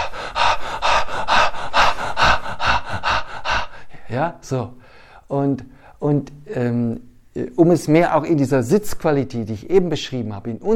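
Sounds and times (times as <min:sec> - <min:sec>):
fast forceful breathing in a breathwork practice: 0:00.0 - 0:05.3
speech: 0:04.1 - 0:10.7.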